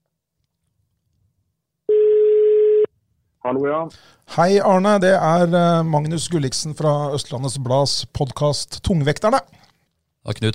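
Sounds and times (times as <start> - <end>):
single-pitched telephone ringing tone on an outgoing call: 1.9 - 2.9
speech: 3.4 - 9.6, 10.2 - 10.5.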